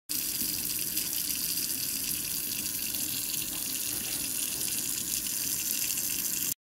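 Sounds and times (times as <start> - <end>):
faucet: 0.1 - 6.5.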